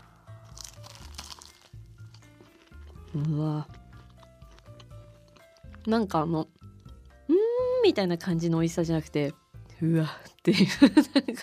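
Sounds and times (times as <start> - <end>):
crunching bites of a baked banana-filled sweet with a caramelized surface: 0.4 - 5.9
speech: 3.1 - 3.8, 5.8 - 6.5, 7.8 - 11.4.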